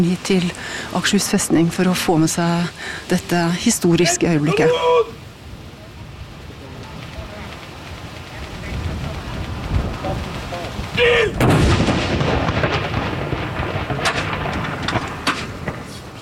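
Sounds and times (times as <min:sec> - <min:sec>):
speech: 0:00.0 - 0:05.2
outdoor noise: 0:00.0 - 0:16.2
ceremonial cannon salute shot: 0:11.4 - 0:15.9.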